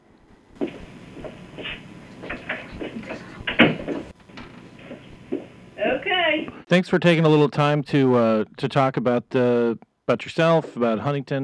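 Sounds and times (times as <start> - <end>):
faint rustling: 0.0 - 6.7
shuffling and handling noises: 0.6 - 6.7
office door thumping shut: 2.3 - 5.6
speech: 6.7 - 11.4.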